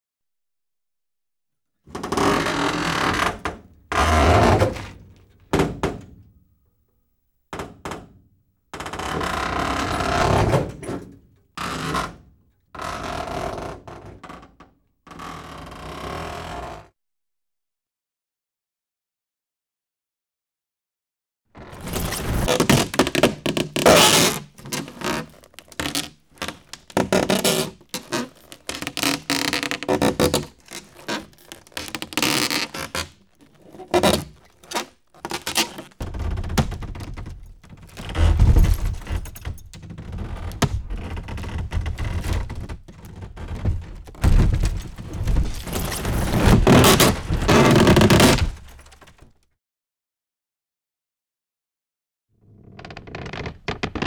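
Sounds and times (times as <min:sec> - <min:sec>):
large wood creaking: 0:02.0 - 0:06.1, 0:08.8 - 0:11.0, 0:21.6 - 0:49.3, 0:52.7 - 0:54.0.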